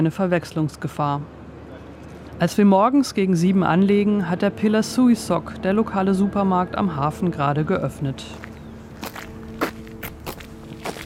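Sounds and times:
speech: 0.0s - 1.4s, 2.4s - 8.5s
low steady hum: 0.0s - 11.0s
footsteps walking up a street: 8.3s - 11.0s.

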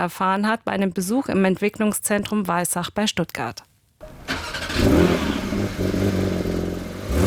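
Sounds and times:
speech: 0.0s - 3.7s
Porsche 911 sports car engine starting and revving: 4.0s - 7.2s.

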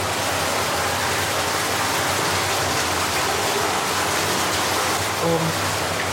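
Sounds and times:
water flowing into a mine: 0.0s - 6.1s.

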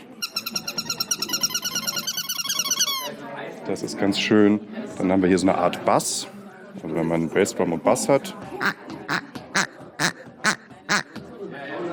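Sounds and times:
faint murmur: 0.0s - 11.9s
small squeeze-toy chicken squawking: 0.2s - 3.1s, 8.6s - 11.1s
speech: 3.7s - 8.8s.

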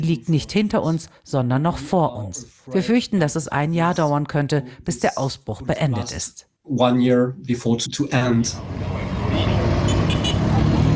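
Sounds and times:
speech: 0.0s - 9.8s
cars and motor vehicles rumbling past in the streets of Bunia: 8.5s - 10.9s.

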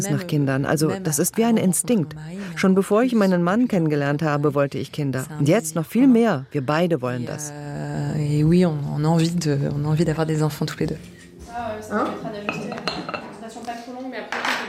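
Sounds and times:
speech: 0.0s - 12.6s
dishes and cutlery clinking in a small kitchen of a doctor's practice: 11.9s - 14.6s
sharp irregular knocks of crockery: 12.5s - 13.4s.

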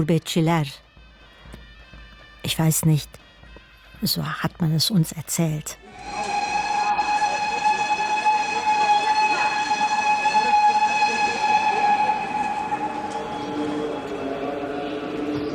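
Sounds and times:
speech: 0.0s - 0.8s, 2.4s - 3.2s, 4.0s - 6.3s
train whistle at a railway station platform: 5.8s - 15.5s.

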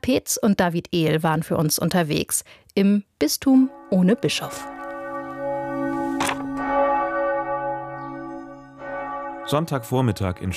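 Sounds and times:
speech: 0.0s - 4.8s, 9.5s - 10.5s
church bell ringing: 3.5s - 10.5s.

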